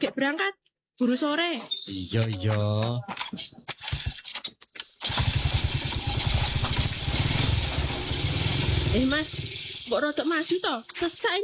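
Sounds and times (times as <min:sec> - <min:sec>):
speech: 0:00.0 - 0:03.7, 0:08.9 - 0:11.4
motorcycle engine starting: 0:05.0 - 0:10.0.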